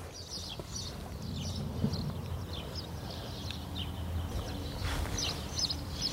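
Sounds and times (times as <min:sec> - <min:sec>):
birds chirping and singing in a destroyed abandoned town: 0:00.0 - 0:06.1.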